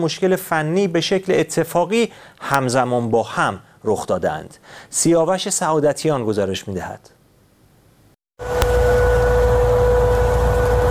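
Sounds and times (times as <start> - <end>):
speech: 0.0 - 7.2
air raid warning siren in west Tehran: 8.4 - 10.8.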